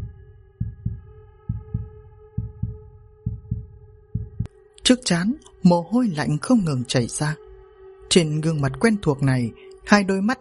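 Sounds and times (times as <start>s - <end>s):
heartbeat sound effect with deep lub-dub thumps: 0.0s - 4.5s
low droning tone: 0.0s - 4.5s
speech: 4.9s - 7.4s, 8.1s - 10.4s.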